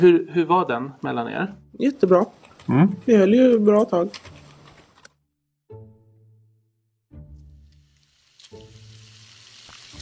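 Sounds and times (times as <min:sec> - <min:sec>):
speech: 0:00.0 - 0:04.3
pork frying in a pan: 0:07.5 - 0:10.0.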